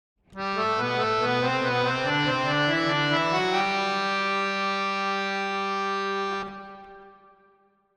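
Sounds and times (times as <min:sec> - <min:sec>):
harmonium melody with reverb: 0:00.3 - 0:07.6.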